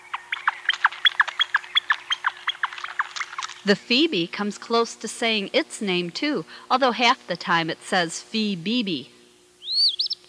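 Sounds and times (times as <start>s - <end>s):
flicker woodpecker calling: 0.0s - 3.8s, 9.6s - 10.2s
speech: 3.6s - 9.2s.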